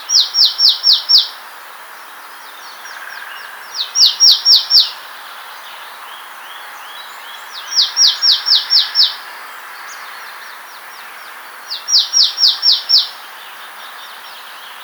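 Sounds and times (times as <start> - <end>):
marsh tit repeating rapid downward-slurred chips: 0.0 - 1.4, 2.7 - 5.0, 7.6 - 9.2, 11.7 - 14.8
low background hiss: 0.0 - 14.8.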